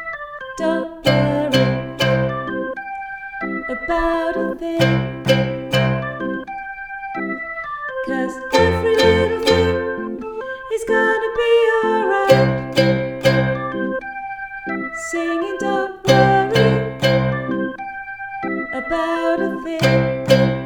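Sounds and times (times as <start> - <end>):
ukulele: 0.6 - 2.8, 3.7 - 6.5, 8.1 - 14.1, 15.0 - 17.8, 18.6 - 20.6.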